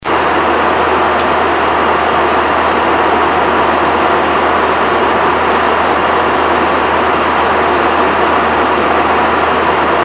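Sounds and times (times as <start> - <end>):
airliner cabin ambient noise at seat 1A: 0.0 - 10.0.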